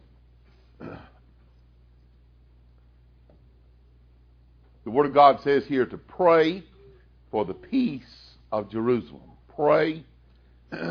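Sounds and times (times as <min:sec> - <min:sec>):
low steady hum: 0:00.0 - 0:10.9
short rough throat-clearing cough: 0:00.8 - 0:01.2, 0:10.7 - 0:10.9
speech: 0:04.9 - 0:06.7, 0:07.3 - 0:10.1, 0:10.7 - 0:10.9.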